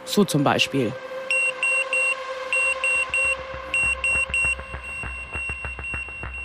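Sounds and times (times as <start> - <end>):
speech: 0.1 - 1.2
railway collision warning alarm with sharp high electronic beeps: 1.3 - 6.4
rhythmic clattering: 2.6 - 6.4.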